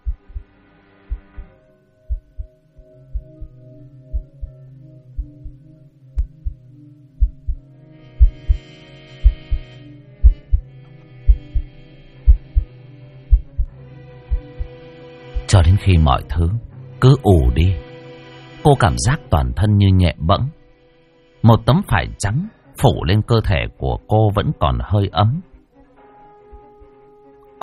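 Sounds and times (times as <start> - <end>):
heart beating fast and loud: 0.0 - 0.4, 1.1 - 1.5, 2.1 - 2.5, 3.1 - 3.5, 4.1 - 4.6, 5.2 - 5.6, 6.2 - 6.6, 7.2 - 7.6, 8.2 - 8.6, 9.2 - 9.6, 10.2 - 10.6, 11.3 - 11.7, 12.3 - 12.7, 13.3 - 13.7, 14.3 - 14.7, 26.6 - 26.8
speech: 15.6 - 17.9, 18.6 - 20.6, 21.4 - 25.5.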